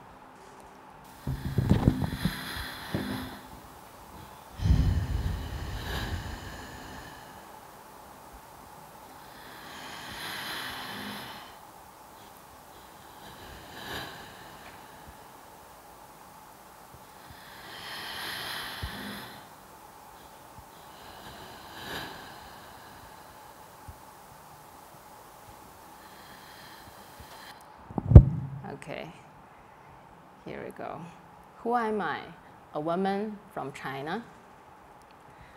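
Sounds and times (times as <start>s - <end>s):
slow deep breaths during a guided breathing exercise: 1.1s - 15.8s, 16.8s - 27.6s, 35.2s - 35.5s
heavier low rumbling bursts: 4.5s - 7.6s, 27.9s - 28.9s
speech: 28.8s - 29.3s, 30.5s - 34.4s.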